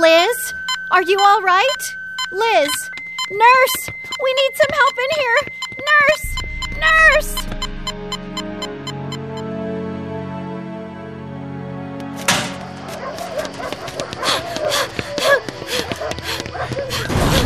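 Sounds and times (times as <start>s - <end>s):
sustained droning tone: 0.0s - 5.3s, 5.9s - 10.1s
speech: 0.9s - 7.6s
dogs barking and snarling: 12.6s - 17.4s.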